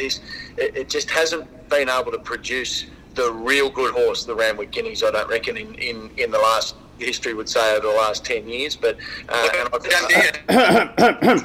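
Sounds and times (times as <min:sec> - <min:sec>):
speech: 0:00.0 - 0:11.4
person coughing with something caught in the throat: 0:10.2 - 0:11.4.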